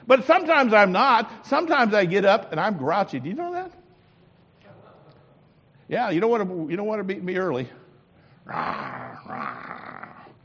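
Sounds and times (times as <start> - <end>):
speech: 0.1 - 3.6, 5.9 - 7.8, 8.5 - 10.0
dog growling: 8.5 - 10.4.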